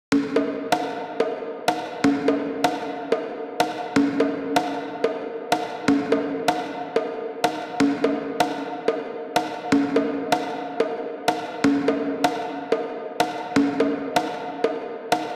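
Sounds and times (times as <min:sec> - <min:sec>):
conga drums in a hall: 0:00.1 - 0:15.3.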